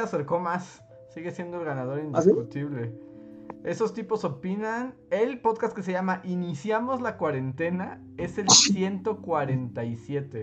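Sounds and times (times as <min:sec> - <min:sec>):
speech: 0:00.0 - 0:10.4
sneeze: 0:08.5 - 0:08.8.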